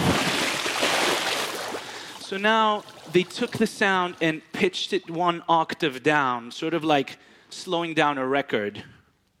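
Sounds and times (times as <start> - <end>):
water rushing and sloshing in a swimming pool: 0.1 - 3.1
speech: 2.3 - 8.9.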